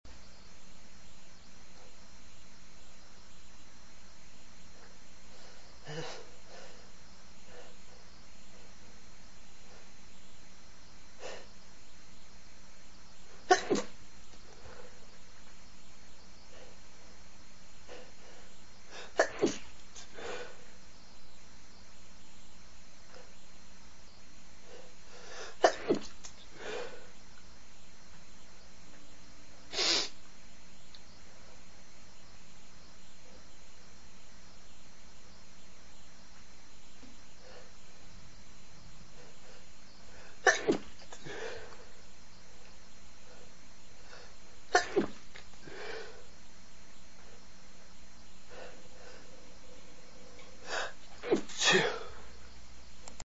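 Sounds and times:
male breathy stifles: 4.8 - 10.2, 11.0 - 11.8, 13.3 - 15.6, 16.4 - 20.9, 24.3 - 27.4, 37.0 - 52.6
male sneezes: 13.5 - 14.0, 19.0 - 19.7, 40.4 - 41.0, 44.7 - 45.2, 50.7 - 52.2.

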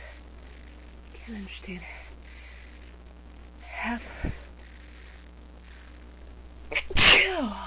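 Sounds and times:
speech: 1.3 - 2.0
sneeze: 6.7 - 7.5.

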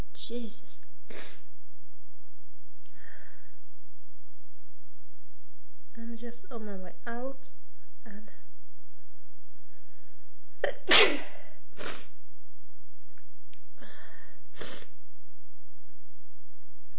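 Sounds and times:
speech: 0.3 - 1.4, 6.2 - 8.4, 10.6 - 12.1
person sneezing: 10.6 - 12.1.

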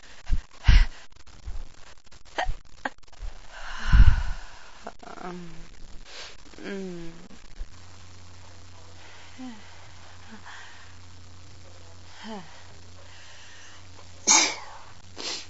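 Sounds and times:
low steady hum: 0.0 - 15.4
quiet breathy noises: 0.0 - 15.4
person sneezing: 14.3 - 15.4.

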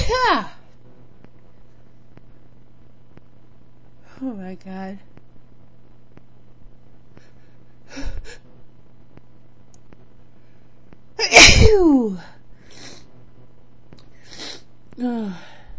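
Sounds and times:
quiet hum: 0.0 - 15.7
speech: 0.1 - 0.6, 4.2 - 5.1, 7.9 - 8.4, 11.2 - 12.4, 15.0 - 15.6
loud explosive human sneeze: 11.2 - 12.0.

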